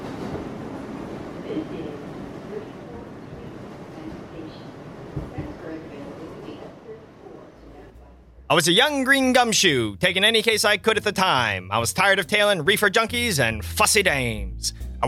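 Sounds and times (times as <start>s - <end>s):
subway train running along the rails: 0.0s - 8.0s
faint indistinct voices: 1.4s - 8.5s
speech: 8.5s - 15.0s.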